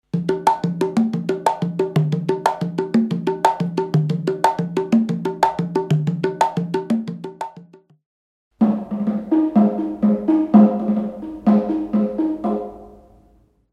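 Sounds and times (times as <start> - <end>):
conga drums: 0.0 - 8.0, 8.6 - 13.1.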